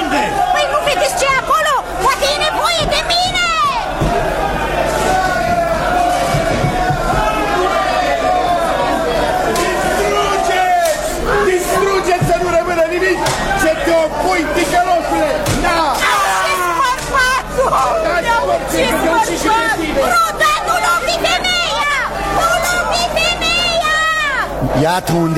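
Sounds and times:
dense unruly crowd shouting and clamoring: 0.0 - 25.3
sharp knocks: 2.6 - 4.5, 5.4 - 7.5
speech: 25.0 - 25.3.

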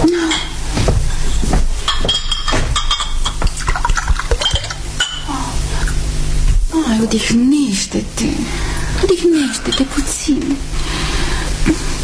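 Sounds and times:
steady hum: 0.0 - 12.0
clinks of glass and dishes: 1.9 - 3.5
water pouring into a glass: 3.6 - 4.8
speech: 7.1 - 8.6, 9.2 - 11.0.

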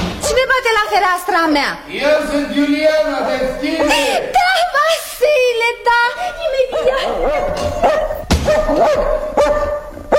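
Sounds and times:
speech: 0.7 - 9.8
dog barking sharply: 6.6 - 10.1.

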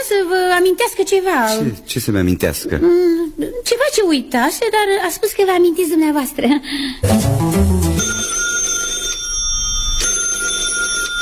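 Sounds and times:
speech: 0.0 - 7.8
low musical phrase: 7.0 - 8.0
telephone bell ringing with a bright metallic trill: 7.8 - 11.2.

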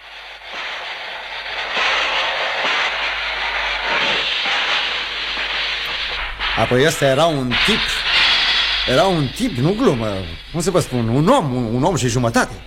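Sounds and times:
faint high whine of a train: 0.0 - 12.6
train rolling along rails: 0.0 - 12.6
speech: 6.6 - 8.1, 8.8 - 12.6.

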